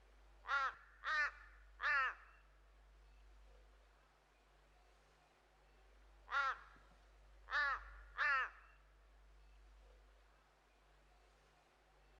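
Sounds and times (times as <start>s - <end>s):
outdoor ambience: 0.0s - 12.1s
crow cawing: 0.5s - 2.4s, 6.3s - 6.8s, 7.5s - 8.7s.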